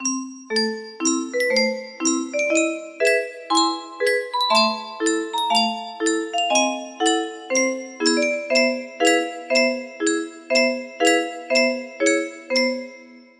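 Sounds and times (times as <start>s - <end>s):
music box lullaby melody: 0.0s - 13.3s.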